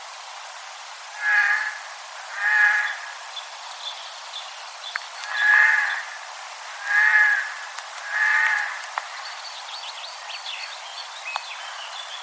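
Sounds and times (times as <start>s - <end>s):
Eurasian jay Garrulus glandarius giving drawn-out nasal mewing calls: 1.2s - 3.2s, 5.3s - 6.2s, 6.8s - 8.8s.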